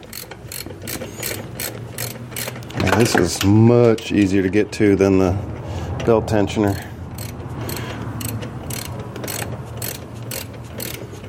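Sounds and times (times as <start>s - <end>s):
ratchet clicking while tightening a fastener near bearings: 0.0s - 3.1s, 6.7s - 11.2s
speech: 3.0s - 6.9s.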